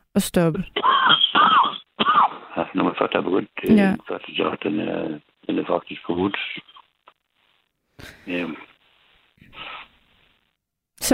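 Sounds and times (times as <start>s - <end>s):
speech: 0.2s - 1.5s, 2.6s - 6.7s, 8.0s - 8.7s, 11.0s - 11.1s
quiet room noise: 0.6s - 10.7s
person coughing: 0.8s - 2.7s.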